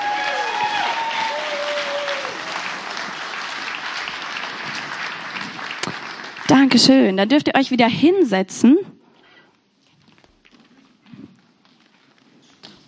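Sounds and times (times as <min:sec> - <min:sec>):
faint whistles or cheers: 0:00.0 - 0:02.4
sizable audience applauding for children: 0:00.0 - 0:07.0
speech: 0:06.5 - 0:08.9.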